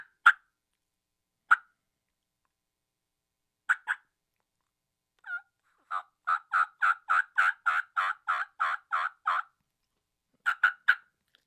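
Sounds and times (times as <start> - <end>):
turkey call making fast cutting hen sounds: 3.7 - 4.1, 5.2 - 9.5, 10.4 - 11.1.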